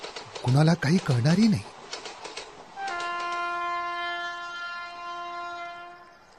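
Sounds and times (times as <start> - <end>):
speech: 0.4 - 1.7
train horn blaring as a train approaches on a railway line: 2.8 - 6.3.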